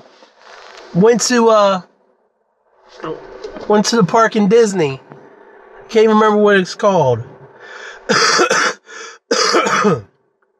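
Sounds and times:
speech: 0.9 - 1.9, 3.0 - 5.0, 5.9 - 7.3, 8.1 - 8.7, 9.6 - 10.1
wheezy breaths: 7.6 - 8.2, 8.8 - 9.3
person coughing: 8.0 - 10.1.

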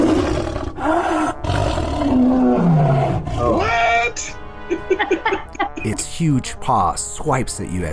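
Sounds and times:
tiger roaring: 0.0 - 3.8
laughter: 4.7 - 6.0
speech: 5.9 - 7.9.

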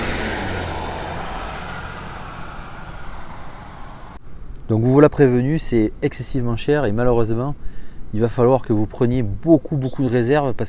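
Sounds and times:
large V8 pickup truck engine rumbling: 0.0 - 4.2
speech: 4.7 - 10.6.

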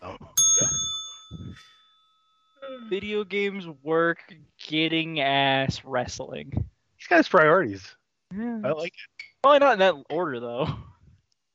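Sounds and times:
single bright bell ding: 0.4 - 3.2
voices murmuring: 2.6 - 10.8
speech: 2.7 - 10.9.

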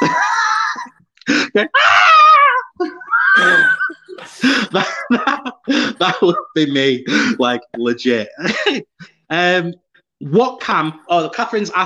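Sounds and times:
laughter: 0.0 - 1.8, 2.8 - 9.2
short gasps and breathy squeals: 0.2 - 4.8
speech: 1.6 - 2.0, 6.0 - 11.8
exaggerated high-pitched frightened screams and wails: 1.7 - 4.4.

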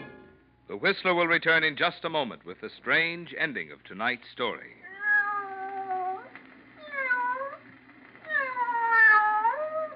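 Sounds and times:
speech: 0.8 - 4.8
cat meowing: 4.8 - 7.6, 8.2 - 9.9.

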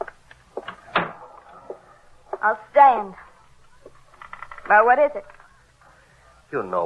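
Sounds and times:
door swinging shut with a solid thud: 0.7 - 1.3
speech: 2.4 - 3.2, 4.7 - 5.3, 6.5 - 6.8.

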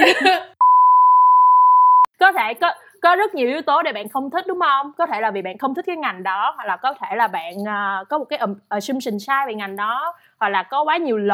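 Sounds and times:
high-pitched censor bleep: 0.6 - 2.1
speech: 2.2 - 11.3.

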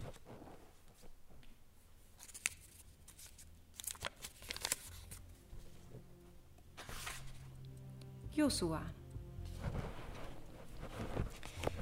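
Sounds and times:
paper note being unfolded, rustling and crinkling: 0.0 - 1.1, 2.0 - 6.0, 6.8 - 7.6, 9.5 - 11.8
speech: 8.4 - 9.0.

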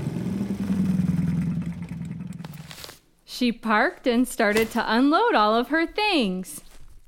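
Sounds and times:
small scooter engine humming as the scooter is ridden: 0.0 - 2.8
speech: 3.3 - 6.7.

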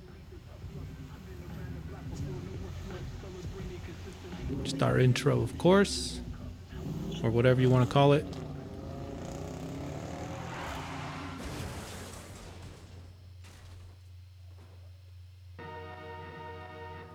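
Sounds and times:
car engine roaring in a crash sound effect: 0.0 - 13.4
low hum: 0.0 - 17.1
speech: 4.6 - 6.2, 7.2 - 8.4
car crash crunching impacts: 10.3 - 15.5.

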